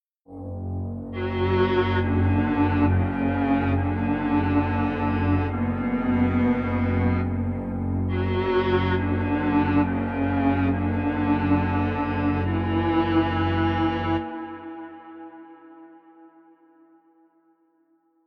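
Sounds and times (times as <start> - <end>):
strings playing: 1.1 - 15.5.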